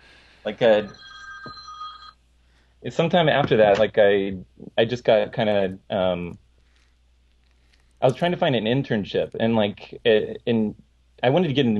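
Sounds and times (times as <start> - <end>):
speech: 0.4 - 1.6, 2.8 - 6.4, 8.0 - 11.7
phone ringing with a high electronic tone: 0.5 - 2.2.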